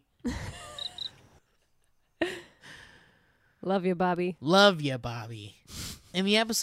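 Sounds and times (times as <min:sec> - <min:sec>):
high-pitched cricket chirping: 0:00.3 - 0:01.3
speech: 0:03.6 - 0:06.6.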